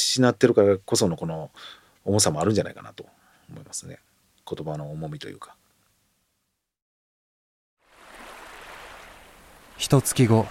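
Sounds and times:
speech: 0.2 - 5.6, 9.8 - 10.5
ocean waves breaking on a beach in Okinawa, Japan: 7.8 - 10.5.

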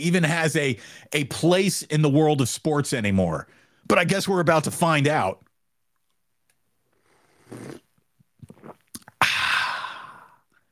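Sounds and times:
speech: 0.0 - 5.4, 7.5 - 7.8
mouth clicks and swallows: 6.9 - 9.6
slurping sip of a drink: 7.0 - 10.2
loud breathy satisfied exhale: 9.2 - 10.4.

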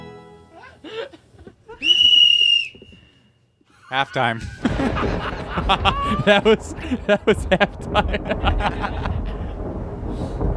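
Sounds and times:
laughter: 0.6 - 1.9, 3.7 - 9.6
speech: 3.9 - 9.2
thunder rumbling: 4.4 - 10.5.

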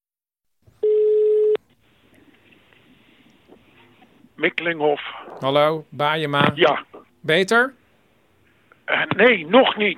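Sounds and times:
electronic telephone tone: 0.8 - 1.6
speech: 4.4 - 7.8, 8.9 - 9.9.

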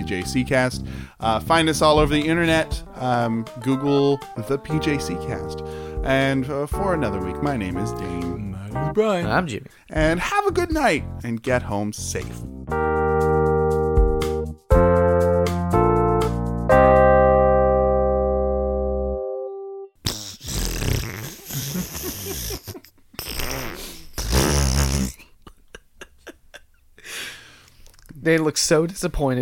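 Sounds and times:
speech: 0.1 - 12.8, 28.2 - 29.3
sustained electronic chord tones: 12.7 - 20.0
raspy fart sounds: 20.0 - 25.3.

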